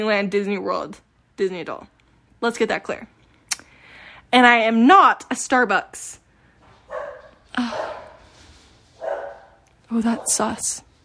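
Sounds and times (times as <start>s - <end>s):
speech: 0.0s - 3.2s, 4.3s - 6.2s, 6.9s - 8.1s, 9.9s - 10.9s
faint hum: 0.0s - 11.0s
dogs barking at a home: 6.8s - 8.3s, 9.0s - 10.6s.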